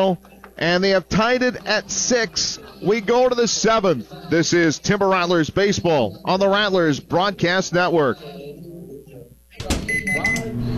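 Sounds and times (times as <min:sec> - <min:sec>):
speech: 0:00.0 - 0:08.4
microwave oven running with a low faint hum: 0:09.5 - 0:10.7.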